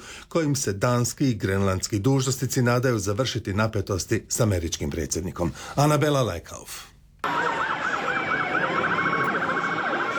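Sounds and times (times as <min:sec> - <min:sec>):
speech: 0:00.3 - 0:07.5
police car sirens wailing through New York city streets: 0:07.2 - 0:10.1.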